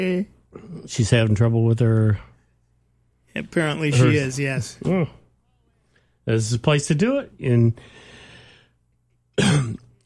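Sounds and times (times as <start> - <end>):
speech: 0.0 - 2.3, 3.4 - 5.2, 6.3 - 8.1, 9.4 - 9.8
person coughing after coffee went down the wrong way: 9.4 - 10.0.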